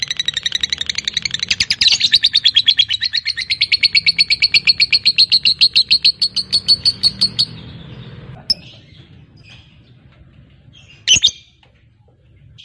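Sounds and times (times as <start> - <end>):
fighter type lovebird giving a long drawn-out chattering song: 0.0 - 7.7, 10.8 - 11.5.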